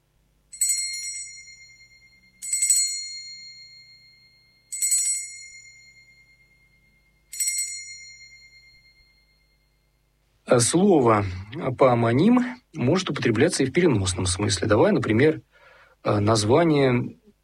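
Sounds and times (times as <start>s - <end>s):
small bell ringing: 0.5s - 10.1s
speech: 10.5s - 17.2s.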